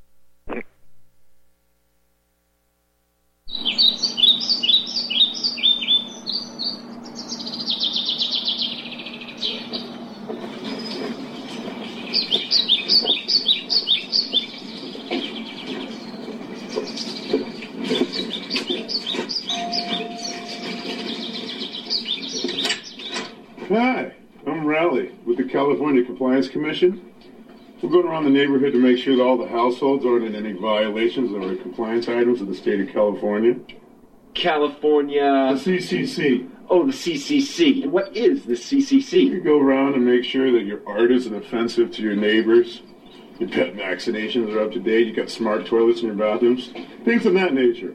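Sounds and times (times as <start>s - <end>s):
steady hum: 0.0s - 47.9s
birds chirping and singing outdoors: 3.5s - 23.7s, 42.0s - 45.7s
speech: 26.5s - 27.1s, 27.9s - 33.8s, 34.4s - 47.9s.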